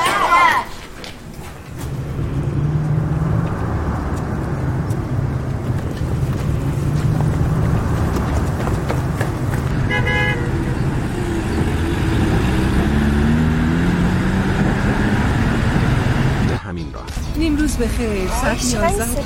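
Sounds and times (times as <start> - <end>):
voices: 0.0 - 1.2, 16.6 - 19.2
road traffic rumble with car engines: 0.0 - 19.2.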